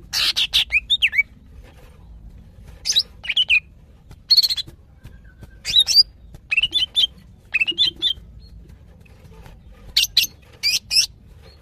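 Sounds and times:
female greater green leafbird chirping and whistling to a male: 0.1 - 1.3, 2.8 - 3.7, 4.3 - 8.6.

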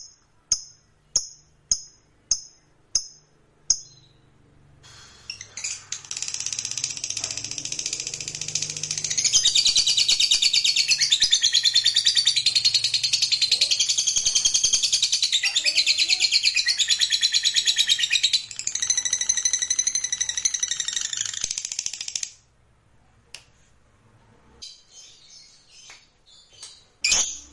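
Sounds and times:
fighter-type lovebird giving a long shrill chattering trill: 5.3 - 22.2.

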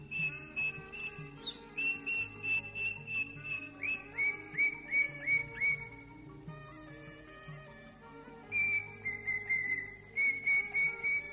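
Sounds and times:
Greater green leafbird whistling: 0.0 - 6.3, 8.5 - 11.3
low background sounds: 0.0 - 11.3.

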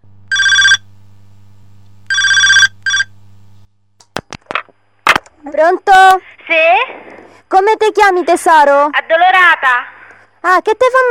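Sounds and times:
low steady hum: 0.0 - 10.8
telephone ringing electronically for an incoming call: 0.3 - 0.9, 2.1 - 3.2
speech: 5.4 - 11.1.

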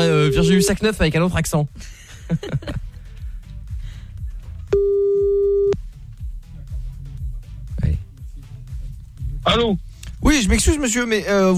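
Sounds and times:
telephone ringback tone while calling someone back: 0.0 - 0.7, 4.8 - 5.8
rhythmic music bed: 0.0 - 11.5
speech: 0.4 - 2.8, 9.6 - 9.8, 10.4 - 11.5
laughter: 1.8 - 3.0.

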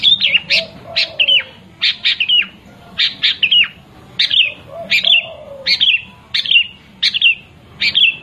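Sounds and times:
long-tailed shrike singing: 0.0 - 8.2.

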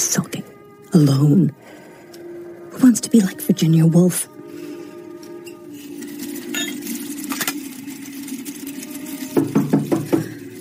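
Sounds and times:
speech: 1.0 - 1.6, 3.0 - 4.4
sharp raps knocking on a door: 9.4 - 10.3.

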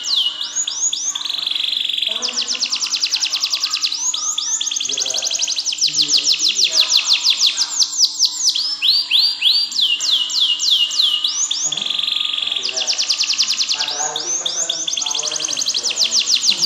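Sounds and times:
canary singing: 0.0 - 16.6.

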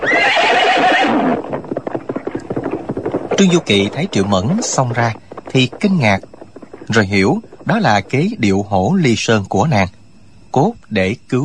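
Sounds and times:
horse giving a long loud whinny: 0.0 - 3.1
horse hoofbeats galloping away: 0.0 - 9.8
speech: 3.4 - 6.3, 6.9 - 11.4.

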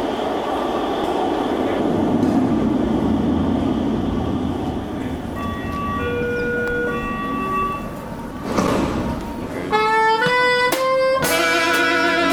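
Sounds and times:
metro train arriving on a newly opened line: 0.0 - 12.3
loud ringing tonal signal: 5.3 - 9.4.

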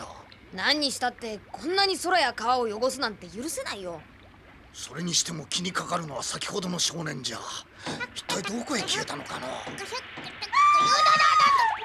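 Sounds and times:
speech: 0.5 - 4.1, 4.7 - 11.5
loud high-pitched scream: 10.4 - 11.8.

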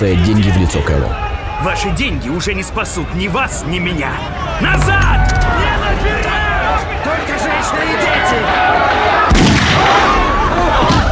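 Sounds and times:
speech: 0.0 - 10.9
gunshots fired into a crowd: 9.3 - 10.1.

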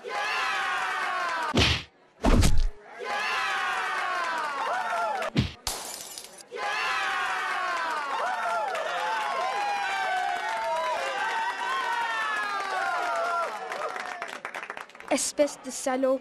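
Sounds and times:
pub crowd shouting and cheering: 0.0 - 5.6, 6.4 - 14.4
punches landing in a pub fistfight: 1.5 - 2.8, 5.3 - 5.6
speech: 15.2 - 16.1.

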